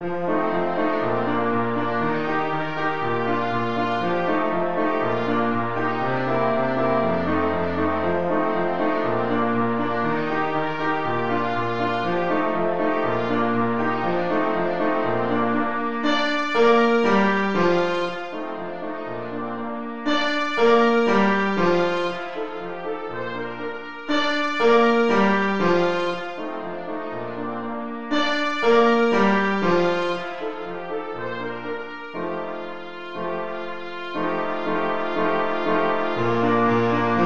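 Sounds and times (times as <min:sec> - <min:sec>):
trumpet playing a can-can tune: 0:00.0 - 0:37.2.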